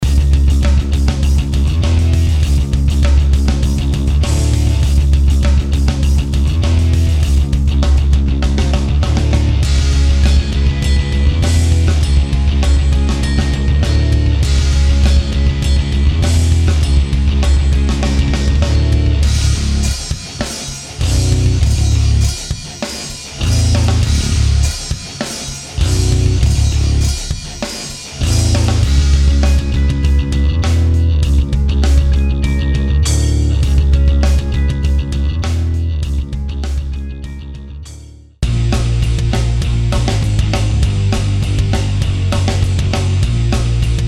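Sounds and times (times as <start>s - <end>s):
heavy metal music: 0.0s - 44.0s.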